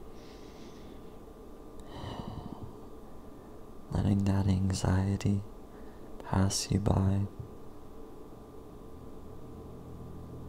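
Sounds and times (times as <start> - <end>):
faint hiss: 0.0 - 10.4
soft raspy person breathing in and out: 0.1 - 1.2, 1.8 - 3.6, 5.7 - 6.2
speech: 4.1 - 5.5, 6.3 - 7.5.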